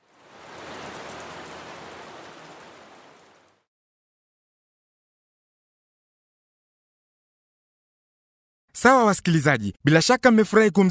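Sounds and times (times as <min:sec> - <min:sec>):
heavy rain pouring: 0:00.0 - 0:03.7
speech: 0:08.8 - 0:10.9.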